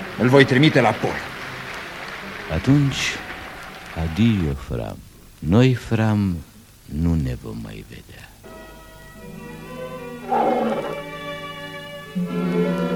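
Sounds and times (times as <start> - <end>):
speech: 0.2 - 1.3, 2.5 - 3.3, 4.0 - 8.3, 12.2 - 12.8
tiger roaring menacingly: 10.2 - 11.1.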